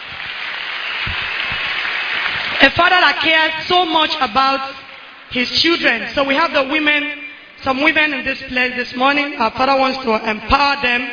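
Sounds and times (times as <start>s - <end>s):
audience clapping: 0.0s - 3.0s
speech: 2.6s - 11.1s.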